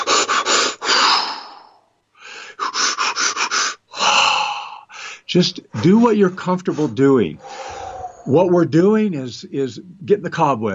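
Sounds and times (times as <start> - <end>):
deep pranayama-style kundalini-style breathing exercise breaths: 0.0 - 8.4
speech: 5.3 - 7.5, 8.3 - 10.7.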